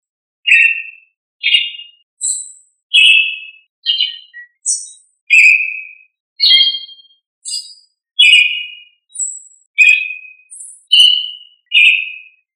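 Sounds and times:
thrush singing short clear whistled phrases: 0.5s - 12.4s.

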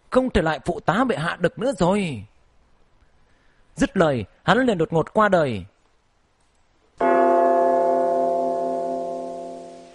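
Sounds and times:
speech: 0.1s - 2.3s, 3.8s - 5.7s
single unhurried bell stroke with rich humming tone: 7.0s - 9.9s.

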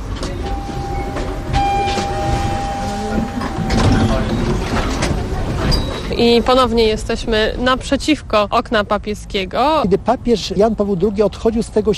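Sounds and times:
tram rail car rumbling and clattering toward a city centre: 0.0s - 11.9s
sustained whine: 0.2s - 5.5s
speech: 6.2s - 11.9s.

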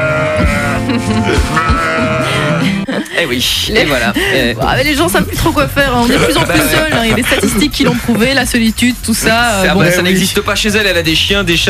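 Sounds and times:
ewe bleating: 0.0s - 2.8s
laughter: 0.4s - 8.7s
speech: 0.9s - 11.6s.

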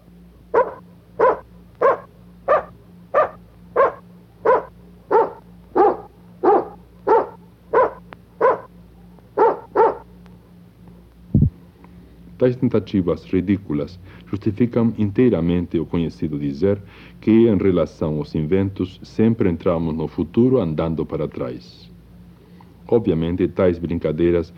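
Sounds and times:
faint low hum: 0.0s - 24.5s
dog barking: 0.5s - 10.1s
speech: 12.4s - 21.9s, 22.9s - 24.5s.

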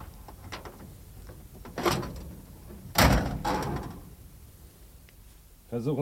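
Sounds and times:
metallic thunks of Studebaker car hood: 0.0s - 4.3s
broken-down Studebaker car hood being opened: 0.2s - 4.2s.

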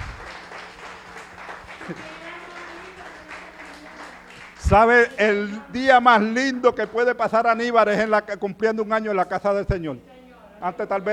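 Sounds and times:
church congregation applauding during a worship service: 0.0s - 7.9s
speech: 1.9s - 2.2s, 4.7s - 11.1s.

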